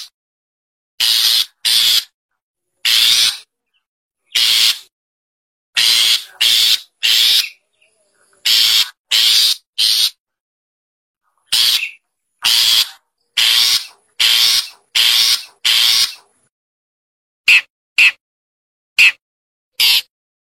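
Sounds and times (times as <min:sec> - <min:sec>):
Long-tailed Shrike giving harsh rasping bursts: 0:01.0 - 0:02.2, 0:02.8 - 0:03.5, 0:04.3 - 0:04.9, 0:05.8 - 0:07.8, 0:08.4 - 0:10.2, 0:11.4 - 0:16.4, 0:19.8 - 0:20.1.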